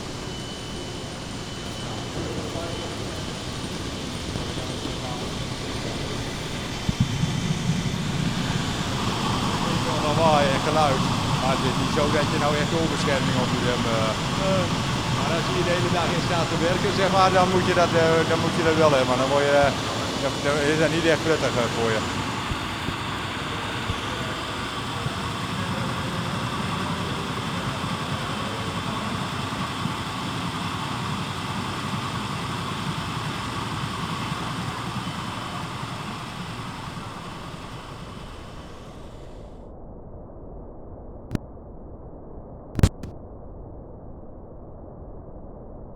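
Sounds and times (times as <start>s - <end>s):
pumping station machinery roar and hum: 0.0s - 39.6s
speech: 11.6s - 22.2s.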